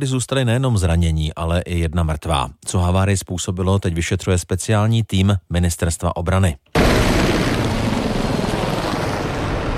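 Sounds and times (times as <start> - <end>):
speech: 0.0 - 7.2
H-1 Venom military helicopters roaring: 6.8 - 9.7.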